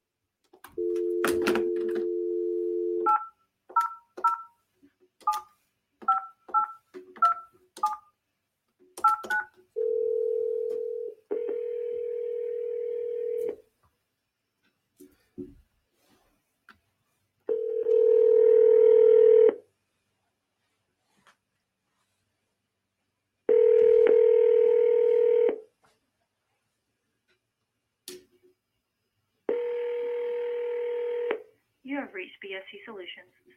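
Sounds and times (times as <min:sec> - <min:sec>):
telephone dial tone: 0:00.8 - 0:03.2, 0:09.0 - 0:13.6, 0:17.5 - 0:19.6, 0:23.5 - 0:25.6, 0:29.5 - 0:31.4
dual-tone telephone keypad beeps: 0:03.0 - 0:04.5, 0:05.2 - 0:08.1, 0:09.0 - 0:09.5
speech: 0:32.7 - 0:33.4.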